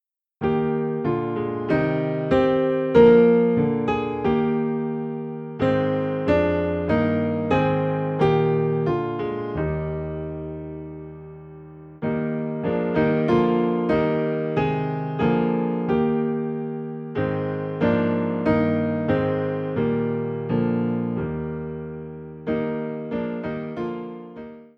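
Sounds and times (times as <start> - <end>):
low piano hymn in E flat: 0.0 - 24.7.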